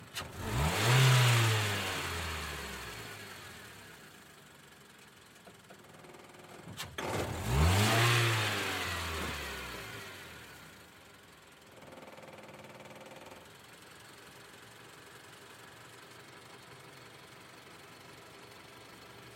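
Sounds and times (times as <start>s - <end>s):
car starting: 0.0s - 4.0s, 6.7s - 10.7s.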